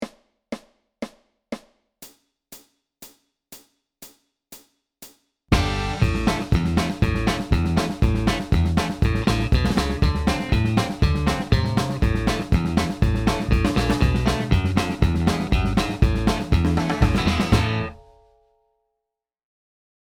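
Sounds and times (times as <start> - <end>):
rhythm track: 5.5 - 18.0.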